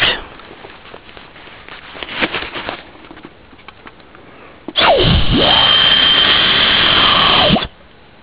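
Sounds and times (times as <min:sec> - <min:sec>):
quiet rustling: 0:00.0 - 0:04.7
wind-driven animal-deterrent whistle shrieking with rush of air and high tone: 0:04.8 - 0:07.7.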